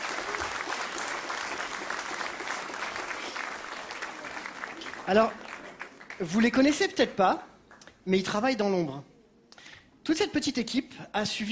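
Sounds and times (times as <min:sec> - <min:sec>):
crowd clapping loudly: 0:00.0 - 0:08.0
speech: 0:05.1 - 0:05.4, 0:06.2 - 0:09.1, 0:10.1 - 0:11.4.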